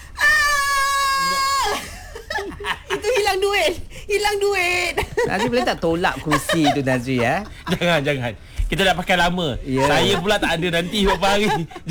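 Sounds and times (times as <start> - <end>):
person imitating sad scream: 0.2 - 1.8
laughter: 1.5 - 3.5, 5.0 - 8.2, 9.7 - 11.8
speech: 3.5 - 11.8.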